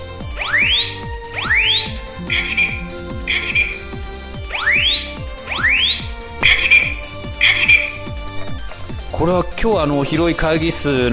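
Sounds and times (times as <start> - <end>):
white round residential fire alarm whooping and beeping in a large meeting room: 0.3 - 8.7
speech: 9.2 - 11.1.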